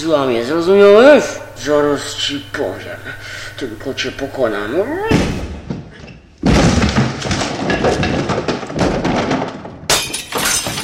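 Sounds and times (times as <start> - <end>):
speech: 0.0 - 5.4
shards of glass scattering: 7.6 - 10.8
glass ball with pictures inside shattering: 9.9 - 10.8.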